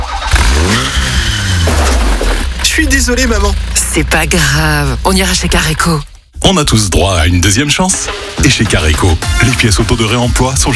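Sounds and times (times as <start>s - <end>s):
car engine revving as the car accelerates away: 0.0s - 10.7s
speech: 2.8s - 10.7s.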